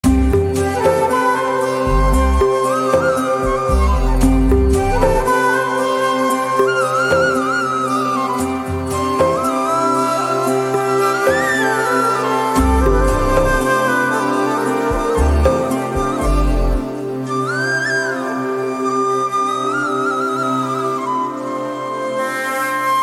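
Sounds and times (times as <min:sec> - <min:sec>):
flute background music: 0:00.0 - 0:23.0.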